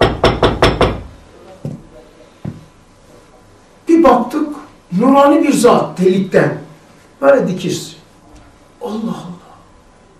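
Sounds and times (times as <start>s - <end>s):
knocking on a door: 0.0s - 1.1s
faint hum: 0.0s - 10.1s
speech: 4.0s - 6.6s, 7.2s - 8.0s.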